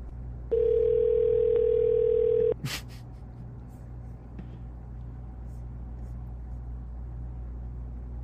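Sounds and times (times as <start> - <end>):
single steady electronic ring tone on a phone line: 0.5 - 2.6.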